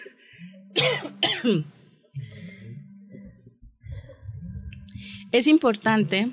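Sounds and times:
harsh coughs: 0.8s - 1.8s
speech: 0.8s - 1.8s, 5.3s - 6.3s
throat clearing: 0.8s - 2.5s.

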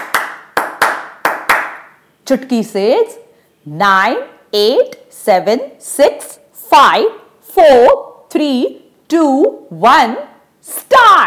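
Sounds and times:
hands clapping: 0.0s - 2.0s
speech: 2.3s - 11.2s.

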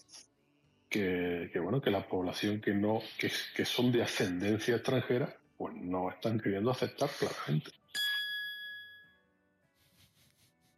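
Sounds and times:
speech: 0.9s - 7.9s
bell ding: 7.9s - 9.2s.

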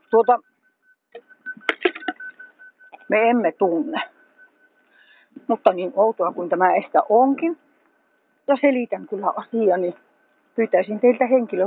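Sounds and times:
pedestrian traffic light signal in Hämeenlinna Finland beeping: 0.0s - 4.8s
speech: 0.1s - 0.5s, 3.1s - 4.2s, 5.4s - 7.6s, 8.5s - 10.0s, 10.6s - 11.6s.

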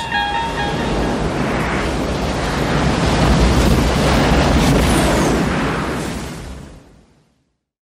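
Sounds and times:
roar of surging ocean water from approaching tsunami: 0.0s - 6.9s
windy rumble: 0.0s - 7.4s.

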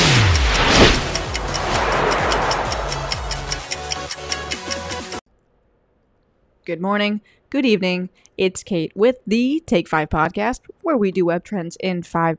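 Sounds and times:
clock ticking: 0.0s - 5.2s
low rushing swell: 0.5s - 4.0s
speech: 6.7s - 12.3s.

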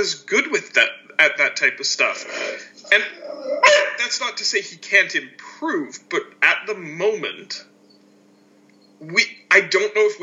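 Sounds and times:
speech: 0.0s - 7.7s, 9.0s - 10.2s
dog growling with a whiny tonal growl: 2.8s - 4.0s
dog barking: 3.6s - 4.0s.

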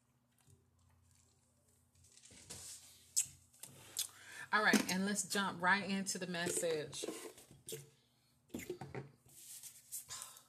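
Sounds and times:
person sipping water: 3.1s - 4.2s
speech: 4.5s - 7.9s.

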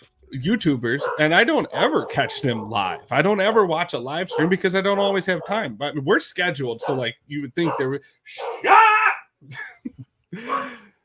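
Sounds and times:
speech: 0.3s - 10.8s
female dog barking and yipping: 1.0s - 5.7s, 6.8s - 8.8s.

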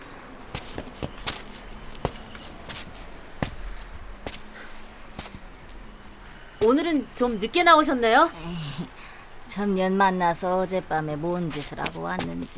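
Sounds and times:
footsteps walking: 0.5s - 5.8s
speech: 6.6s - 8.9s, 9.5s - 12.5s.

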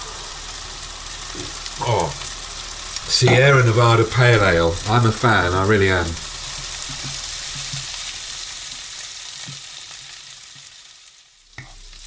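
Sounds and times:
spices and onions frying in a pan: 0.0s - 12.0s
speech: 1.4s - 2.3s, 3.1s - 6.3s.

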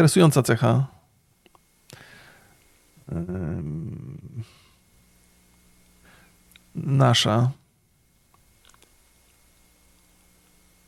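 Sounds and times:
speech: 0.0s - 1.0s, 3.1s - 4.6s, 6.8s - 7.6s
steady low hum: 0.7s - 10.8s
host swallowing saliva: 3.1s - 4.4s.

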